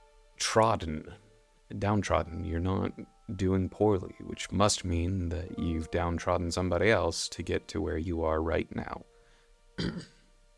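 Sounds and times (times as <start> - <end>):
speech: 0.5 - 9.1, 9.8 - 10.2
person clearing throat gravelly: 9.8 - 10.3.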